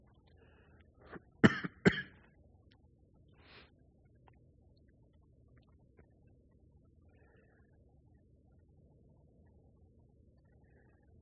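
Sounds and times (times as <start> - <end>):
person coughing: 1.4 - 2.2.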